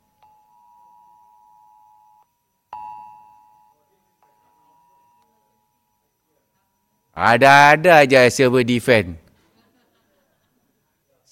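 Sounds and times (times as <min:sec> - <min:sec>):
fire alarm warning device beeping in high-pitched electronic tones: 0:00.0 - 0:08.3
speech: 0:07.2 - 0:09.2
laughter: 0:09.3 - 0:11.0.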